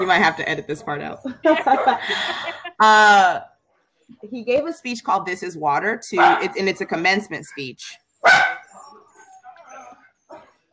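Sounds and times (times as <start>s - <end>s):
speech: 0.0s - 3.5s, 4.1s - 8.6s
laughter: 1.3s - 2.9s
dog barking indoors at home: 6.2s - 6.5s, 8.2s - 10.4s.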